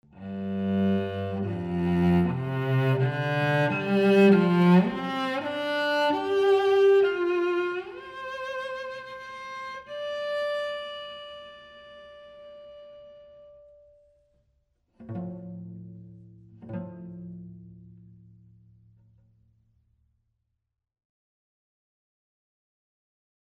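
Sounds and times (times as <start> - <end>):
cello in a large wooden room: 0.0 - 14.3, 14.9 - 19.2.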